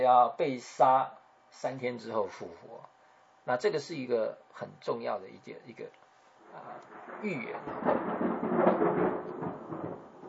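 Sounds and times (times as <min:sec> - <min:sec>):
speech: 0:00.0 - 0:09.0
low faint thunder rumbling: 0:06.4 - 0:10.2.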